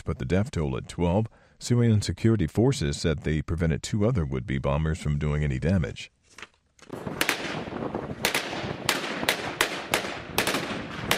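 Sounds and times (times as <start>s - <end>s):
speech: 0.1s - 7.0s
roar of shooting and echoes: 6.9s - 11.1s
sharp gunshots: 6.9s - 11.1s.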